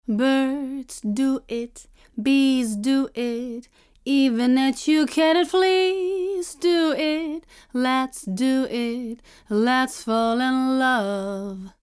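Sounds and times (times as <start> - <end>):
EQed vocal pass: 0.0 - 11.8.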